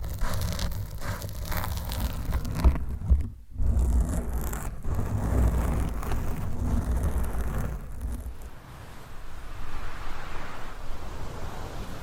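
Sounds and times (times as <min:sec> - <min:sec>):
microphone covers scratched against the microphone: 0:00.0 - 0:08.6.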